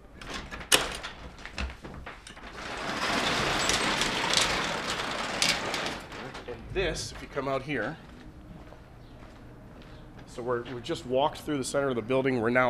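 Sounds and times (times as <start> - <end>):
garage door in a building exterior wall opening: 0.0 - 7.6
speech: 6.8 - 8.1, 10.4 - 12.6.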